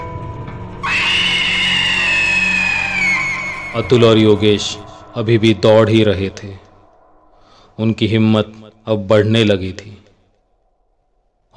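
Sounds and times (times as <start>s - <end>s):
low rumbling background: 0.0s - 11.5s
witch's loud shrill scream: 0.8s - 7.4s
speech: 3.8s - 6.6s, 7.8s - 10.0s.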